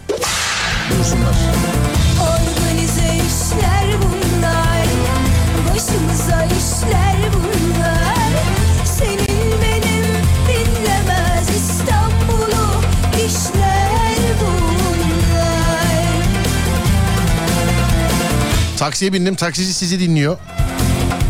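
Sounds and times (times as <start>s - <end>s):
loud busy music with a steady beat: 0.0s - 21.2s
whip crack: 0.1s - 1.0s
speech: 1.0s - 1.8s, 18.8s - 20.6s.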